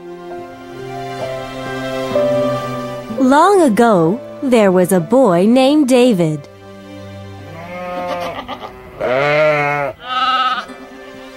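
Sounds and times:
speech: 3.2 - 6.5
sheep bleating: 7.4 - 10.8.

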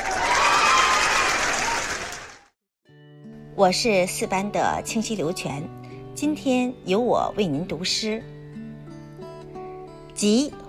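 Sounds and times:
group clapping: 0.0 - 2.6
speech: 3.6 - 8.4, 10.2 - 10.6.

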